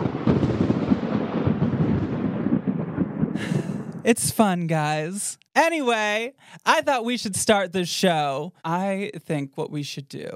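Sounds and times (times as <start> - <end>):
thunder sound effect crackling and rolling: 0.0 - 5.0
speech: 4.0 - 10.3.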